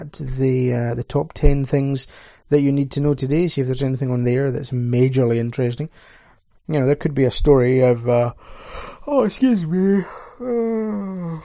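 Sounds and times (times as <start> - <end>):
speech: 0.0 - 11.4
person yawning: 10.0 - 11.4.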